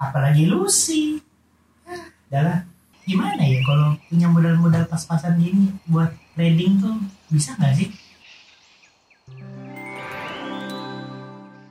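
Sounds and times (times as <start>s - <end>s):
speech: 0.0s - 1.2s, 2.3s - 6.8s, 7.4s - 8.0s
bird chirping: 3.0s - 11.6s
bright sustained chiming jingle: 9.4s - 11.6s.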